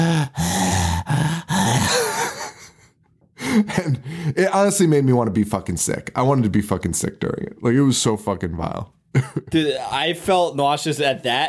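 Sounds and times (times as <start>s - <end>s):
voice imitating wet squelching breathing of brains: 0.0s - 2.4s
speech: 3.6s - 11.4s.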